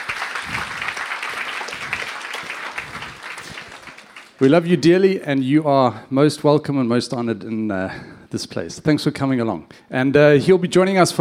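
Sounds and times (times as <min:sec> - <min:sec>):
church audience applauding in welcome: 0:00.0 - 0:04.7
speech: 0:04.4 - 0:11.2.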